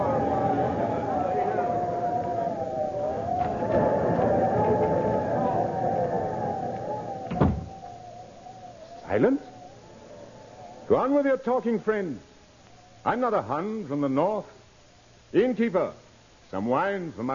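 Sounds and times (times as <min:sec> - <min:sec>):
steady wavering howl: 0:00.0 - 0:14.3
tavern door creaking as it swings: 0:07.2 - 0:07.9
tavern door flung open with a sharp knock: 0:07.3 - 0:07.7
speech: 0:09.2 - 0:09.4, 0:10.9 - 0:12.3, 0:13.0 - 0:14.6, 0:15.3 - 0:17.3.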